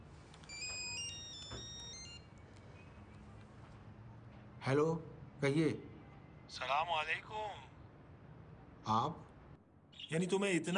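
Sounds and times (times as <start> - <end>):
phone ringing with a bright electronic melodic ringtone: 0.5 - 2.3
speech: 4.6 - 5.9, 6.5 - 7.7, 8.8 - 9.2, 10.1 - 10.7.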